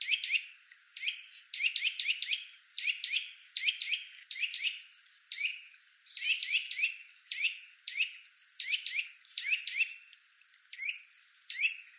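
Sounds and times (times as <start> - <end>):
Eurasian nuthatch Sitta europaea calls: 0.0 - 11.9.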